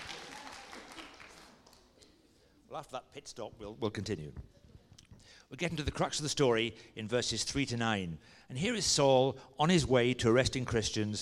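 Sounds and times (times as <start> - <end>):
audience applause: 0.0 - 1.9
speech: 2.7 - 4.6, 5.5 - 11.1.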